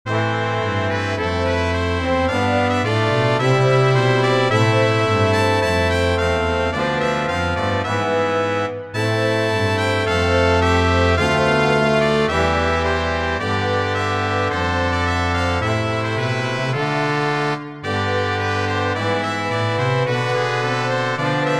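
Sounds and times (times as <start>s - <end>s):
brass playing: 0.1s - 21.5s.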